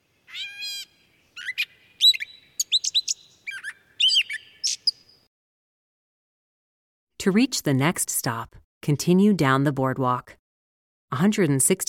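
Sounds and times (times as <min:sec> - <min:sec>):
songbird singing, yellow warbler or catbird: 0:00.0 - 0:05.3
speech: 0:07.2 - 0:10.4, 0:11.1 - 0:11.8.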